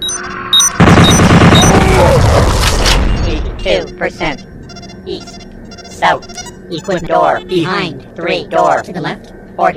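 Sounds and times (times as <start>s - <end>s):
short high electronic tones: 0.0s - 1.7s, 3.1s - 7.5s
turret gun rapid fire in a video game: 0.8s - 2.2s
speech: 4.0s - 4.5s, 6.0s - 9.7s.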